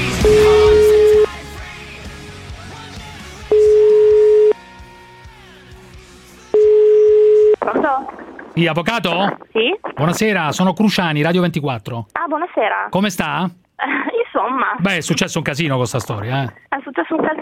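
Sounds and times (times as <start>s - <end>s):
telephone ringing tone while a call is being placed: 0.2s - 1.3s, 3.5s - 4.6s, 6.5s - 7.6s
mixed noise: 6.6s - 17.4s
speech: 8.6s - 17.4s.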